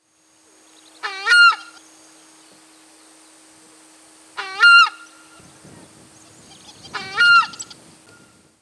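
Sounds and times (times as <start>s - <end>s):
chaja bird calling: 1.0s - 1.8s, 4.4s - 5.4s, 6.4s - 7.8s.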